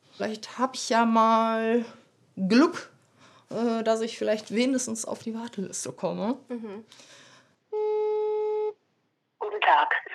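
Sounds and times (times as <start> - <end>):
speech: 0.2 - 2.9, 3.5 - 7.2
telephone ringing tone while calling: 7.8 - 8.8.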